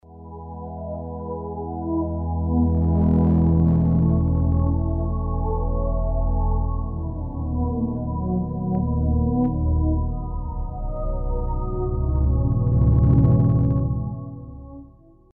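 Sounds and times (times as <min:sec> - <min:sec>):
Roland JV2080 synth pad with phaser: 0:00.2 - 0:14.8.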